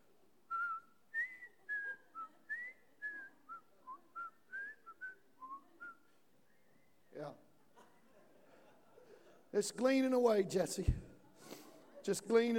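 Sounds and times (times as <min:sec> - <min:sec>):
person whistling a TV theme tune: 0:00.5 - 0:07.1
laughter: 0:07.5 - 0:09.8, 0:10.4 - 0:12.5
speech: 0:09.5 - 0:11.1, 0:12.0 - 0:12.5.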